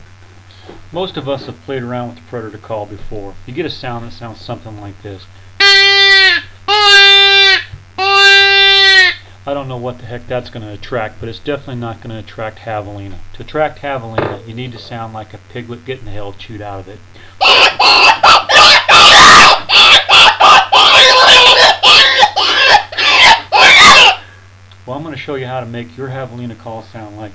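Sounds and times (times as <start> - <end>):
javelina calling: 5.6 - 9.2, 17.4 - 24.3.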